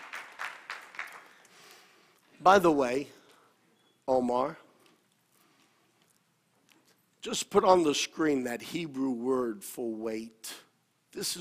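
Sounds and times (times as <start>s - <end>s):
scattered hand claps: 0.0s - 1.6s
crowd clapping in rhythm: 0.0s - 1.8s
speech: 2.4s - 3.2s, 4.1s - 4.6s, 7.2s - 11.3s.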